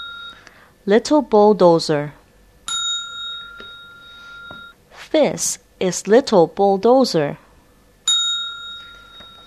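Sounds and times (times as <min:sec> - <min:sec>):
bell chime signaling page turn: 0:00.0 - 0:00.5, 0:02.7 - 0:04.8, 0:08.1 - 0:09.4
speech: 0:00.8 - 0:02.2, 0:05.2 - 0:07.4.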